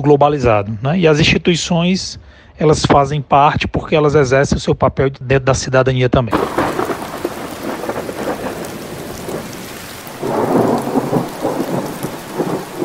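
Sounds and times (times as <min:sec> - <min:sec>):
speech: 0:00.0 - 0:06.6
heavy rain pouring: 0:06.3 - 0:12.8
thunder rumbling: 0:06.3 - 0:12.8.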